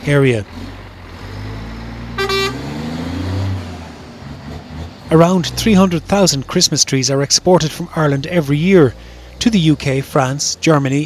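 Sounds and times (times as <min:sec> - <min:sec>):
speech: 0:00.0 - 0:00.7, 0:05.1 - 0:11.0
loaded heavy truck engine rumbling as it pulls away: 0:00.0 - 0:11.0
short bright truck horn toot: 0:02.2 - 0:02.8.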